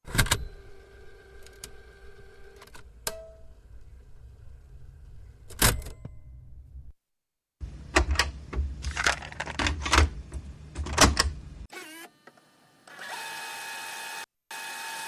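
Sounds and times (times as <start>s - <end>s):
cassette: 0.0s - 6.9s, 7.6s - 11.7s.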